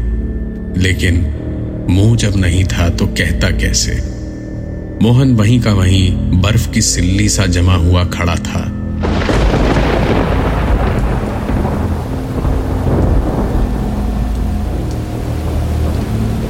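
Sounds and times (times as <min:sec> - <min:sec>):
speech: 0:00.8 - 0:04.1, 0:05.0 - 0:08.8
deep loud thunder rumbling and rolling: 0:09.0 - 0:16.4
steady downpour of heavy rain: 0:09.0 - 0:16.4.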